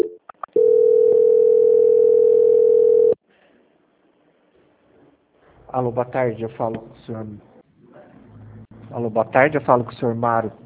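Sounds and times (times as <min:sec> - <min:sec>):
telephone line tone during bank call transfer: 0:00.0 - 0:03.2
speech: 0:05.8 - 0:07.5, 0:08.9 - 0:10.6.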